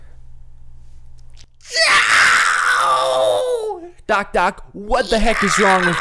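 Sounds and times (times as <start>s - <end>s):
person screaming at a doctor's office: 1.6s - 3.9s, 5.1s - 5.9s
speech: 4.1s - 5.9s.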